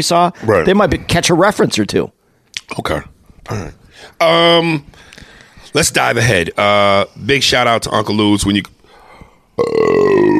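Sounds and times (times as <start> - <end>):
speech: 0.0 - 8.8, 9.6 - 10.3
loud belch after eating fast food delivery pizza: 9.6 - 10.3.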